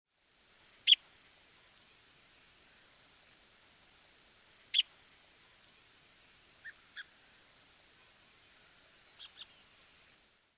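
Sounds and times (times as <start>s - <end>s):
Buff-breasted Sandpiper calling: 0.8s - 1.0s, 4.7s - 4.9s, 6.6s - 7.3s, 8.0s - 9.7s.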